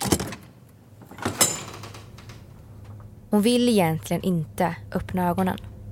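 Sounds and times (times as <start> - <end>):
dormitory door clunk: 0.0 - 3.0
speech: 3.3 - 5.7.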